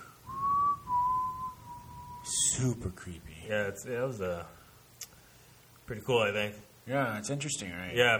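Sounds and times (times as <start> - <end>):
faint thin steady whistle on a ghost-hunting recording: 0.0 - 2.6
speech: 2.6 - 4.6, 5.9 - 8.1.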